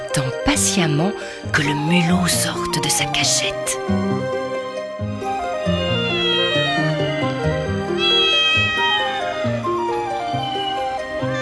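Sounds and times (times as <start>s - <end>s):
speech: 0.2s - 4.4s
cat meowing on rooftops at night: 5.6s - 11.3s.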